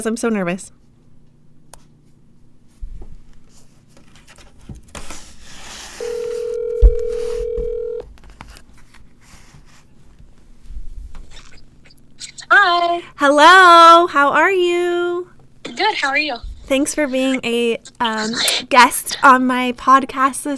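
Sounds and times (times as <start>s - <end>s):
speech: 0.0s - 0.8s, 12.6s - 20.5s
phone call ringing tone: 6.0s - 8.0s.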